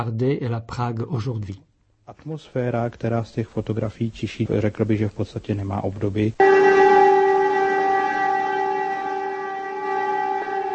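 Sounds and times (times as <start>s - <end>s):
speech: 0.0s - 6.6s
air raid siren wailing: 6.4s - 10.7s.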